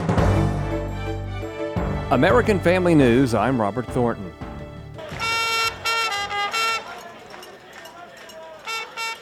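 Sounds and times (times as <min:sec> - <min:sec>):
brassy trumpet playing at an outdoor street protest: 0:00.5 - 0:07.5, 0:08.6 - 0:09.2
speech: 0:02.1 - 0:04.4
murmur of outdoor crowd noise: 0:04.6 - 0:09.2.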